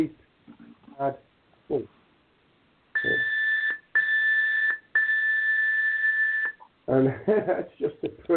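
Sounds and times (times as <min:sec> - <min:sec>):
speech: 0:00.0 - 0:00.2, 0:01.0 - 0:02.0, 0:06.9 - 0:08.3
loud high-pitched electronic studio countdown timer alarm beeps: 0:03.0 - 0:06.6.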